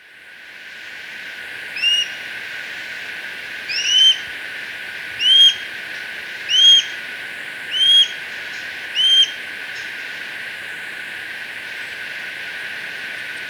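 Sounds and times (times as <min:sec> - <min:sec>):
Plain-breasted Hawk upslurred squealing whistles: 0:01.8 - 0:02.1, 0:03.7 - 0:04.3, 0:05.2 - 0:05.7, 0:06.5 - 0:07.0, 0:07.7 - 0:08.2, 0:09.0 - 0:09.4.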